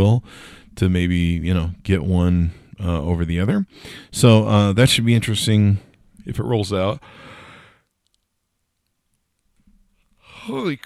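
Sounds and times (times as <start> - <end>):
speech: 0.0 - 7.3, 10.4 - 10.8
faint clicks: 7.8 - 10.2
yawn ending in a loud breathy exhale: 10.2 - 10.8.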